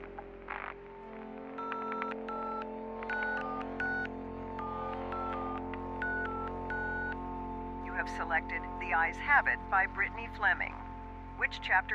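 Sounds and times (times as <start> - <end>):
steady faint drone: 0.0 - 11.9
telephone keypad tones dialing a number on an automated phone line: 1.6 - 7.2
speech: 8.1 - 10.8, 11.4 - 11.9.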